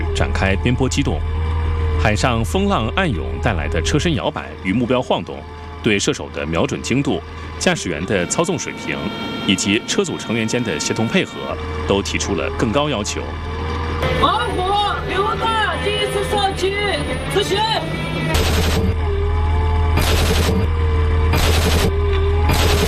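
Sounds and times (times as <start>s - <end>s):
constant low engine rumble of amphibious armored vehicles: 0.0s - 22.8s
gunfire from amphibious armored vehicles during a sea firing drill off southern Fujian: 18.4s - 19.0s, 20.0s - 20.7s, 21.3s - 22.8s.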